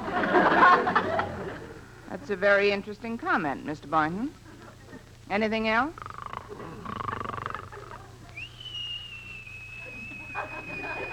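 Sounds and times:
laughter: 0.0s - 1.8s, 7.1s - 8.5s, 9.8s - 11.1s
speech: 2.2s - 4.4s, 5.3s - 6.7s
man whistling while asleep: 8.4s - 11.1s.

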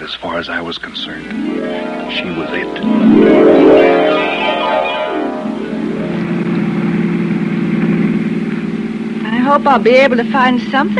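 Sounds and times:
speech: 0.0s - 4.3s, 9.5s - 10.9s
car engine humming while driving and shifting gears: 5.5s - 10.9s.

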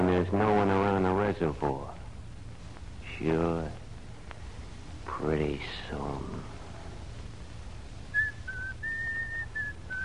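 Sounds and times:
low rumble: 0.0s - 10.0s
speech: 0.1s - 2.0s, 3.2s - 3.8s, 5.2s - 6.5s
person whistling a short simple tune inside a house: 8.2s - 10.0s.

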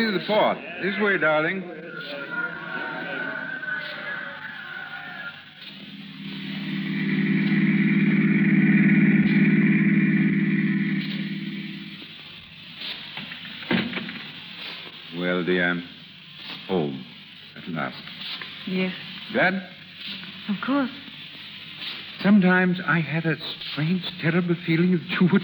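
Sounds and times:
speech: 0.0s - 2.9s, 15.3s - 16.0s, 17.8s - 18.1s, 18.7s - 19.8s, 20.5s - 21.1s, 22.2s - 25.4s
faint murmur: 0.0s - 5.8s
car engine running: 5.7s - 12.2s.

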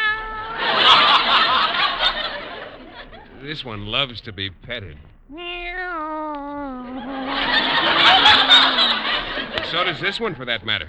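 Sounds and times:
cat meowing: 0.0s - 3.5s, 5.2s - 10.2s
laughter: 0.0s - 5.0s, 6.4s - 10.8s
speech: 3.4s - 8.2s, 9.7s - 10.8s.

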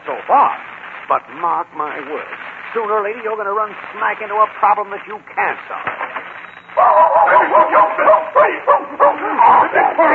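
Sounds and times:
speech: 0.3s - 6.0s, 7.4s - 10.1s
dog barking and yipping: 6.8s - 10.1s.

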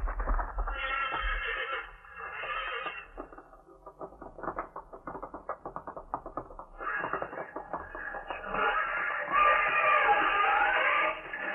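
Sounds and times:
rapid scuffle of stamping hooves and thuds: 0.0s - 11.5s
horses squealing and whinnying while fighting: 0.7s - 3.5s, 6.8s - 11.5s.

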